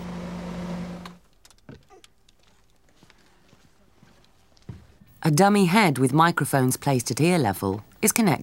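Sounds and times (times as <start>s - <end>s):
car engine drone heard by the driver inside the cabin: 0.0s - 1.2s
speech: 5.2s - 8.4s.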